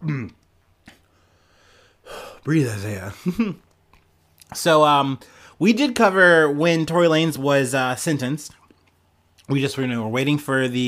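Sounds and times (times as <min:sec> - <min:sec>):
person burping: 0:00.0 - 0:00.4
speech: 0:02.4 - 0:03.7, 0:04.5 - 0:08.6, 0:09.5 - 0:10.8.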